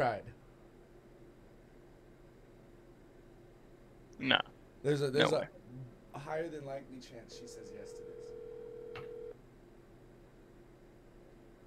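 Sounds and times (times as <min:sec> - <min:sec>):
speech: 0:00.0 - 0:00.4, 0:04.2 - 0:08.3
phone line ringing: 0:07.7 - 0:09.3.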